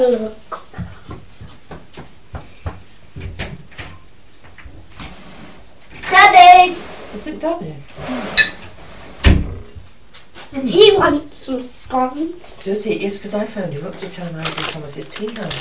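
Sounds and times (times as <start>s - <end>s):
speech: 0.0s - 0.5s, 7.4s - 7.8s, 11.0s - 15.5s
door opening as a customer comes in: 7.9s - 9.9s.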